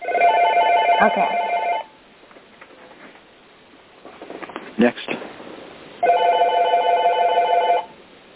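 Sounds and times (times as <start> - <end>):
electronic phone ringing: 0.0 - 2.0, 6.0 - 8.0
low hiss: 0.7 - 8.3
speech: 1.0 - 1.4.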